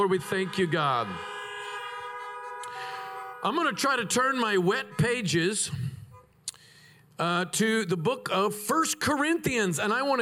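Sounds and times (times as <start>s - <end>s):
speech: 0.0s - 1.3s, 3.4s - 5.9s, 7.2s - 10.2s
car horns honking: 0.0s - 6.4s.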